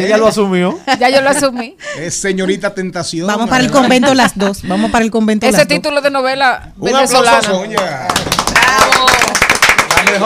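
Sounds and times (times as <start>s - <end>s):
speech: 0.0s - 9.2s, 10.1s - 10.2s
audience applause: 7.8s - 10.2s.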